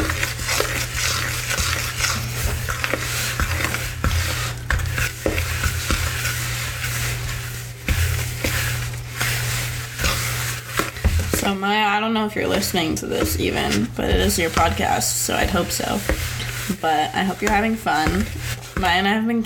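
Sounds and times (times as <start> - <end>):
fork stirring purée, vanilla and milk into dry ingredients: 0.0 - 19.4
speech: 11.6 - 19.4.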